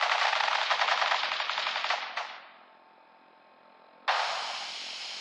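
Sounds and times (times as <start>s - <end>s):
rapid machine-gun fire from men opening fire: 0.0s - 2.6s, 4.1s - 4.8s.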